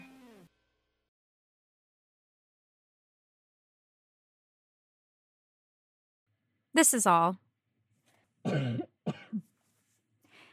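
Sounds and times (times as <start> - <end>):
speech: 6.8 - 7.5, 8.4 - 9.5
loud cough into dress shirts with throaty hacking: 8.4 - 9.5.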